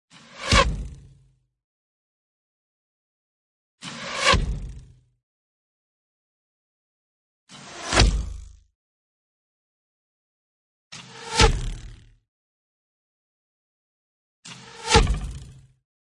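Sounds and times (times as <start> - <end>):
arrow flying: 0.4 - 0.9, 3.8 - 4.8, 7.5 - 8.6, 11.0 - 12.0, 14.5 - 15.5.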